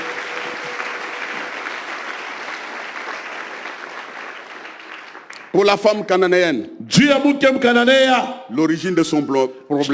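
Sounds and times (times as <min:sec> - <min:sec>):
church congregation applauding during a sermon: 0:00.0 - 0:05.8
speech: 0:05.5 - 0:09.9.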